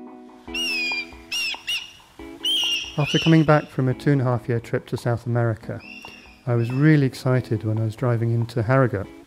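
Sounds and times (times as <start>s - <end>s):
harsh bird calls: 0.5s - 4.0s, 5.7s - 7.2s
speech: 3.0s - 9.2s.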